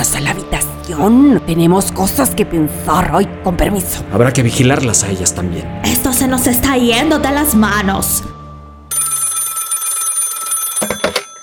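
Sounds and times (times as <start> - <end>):
speech: 0.2 - 8.3
telephone bell ringing with a bright rapid trill: 8.9 - 11.4.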